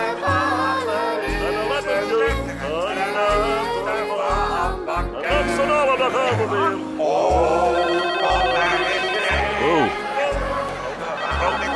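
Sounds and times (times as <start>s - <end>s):
people chattering: 0.0s - 11.7s
mobile phone ringing with buzzing pulses and a melodic tone: 7.7s - 10.1s, 11.1s - 11.7s.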